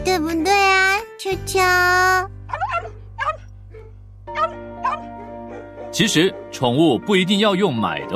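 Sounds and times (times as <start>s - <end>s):
speech: 0.1s - 2.4s, 5.8s - 8.1s
small Maltese dog barking in high-pitched yaps: 2.5s - 5.7s.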